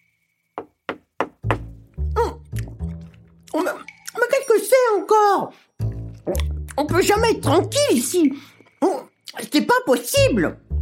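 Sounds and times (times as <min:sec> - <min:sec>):
sharp knocking on a door: 0:00.6 - 0:01.7
speech: 0:03.6 - 0:03.9, 0:04.6 - 0:05.6, 0:06.3 - 0:10.6.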